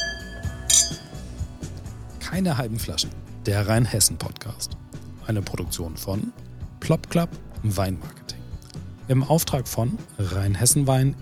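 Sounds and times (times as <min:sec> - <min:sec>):
wine glasses clinking in a toast: 0:00.0 - 0:01.3
speech: 0:02.3 - 0:08.3, 0:09.1 - 0:11.2.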